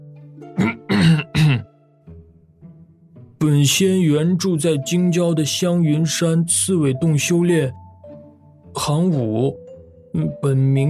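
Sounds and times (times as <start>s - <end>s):
person clearing throat while crouching on a table: 0.6s - 1.7s
speech: 3.6s - 7.8s, 8.8s - 10.8s.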